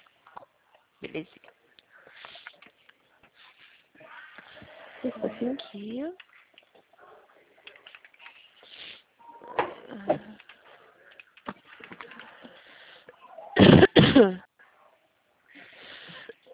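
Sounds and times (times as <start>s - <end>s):
speech: 1.0s - 1.6s, 5.0s - 6.3s, 14.2s - 14.5s
person coughing: 13.6s - 14.5s.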